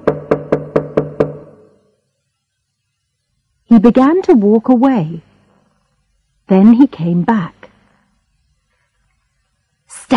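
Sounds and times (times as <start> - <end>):
man knocking on a wooden door in a corridor: 0.0 - 1.7
speech: 3.8 - 5.3, 6.5 - 7.6.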